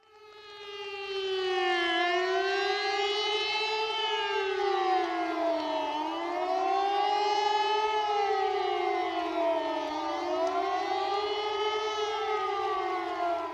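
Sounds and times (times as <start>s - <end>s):
civil defense warning siren with rising and falling tone: 0.0s - 13.5s.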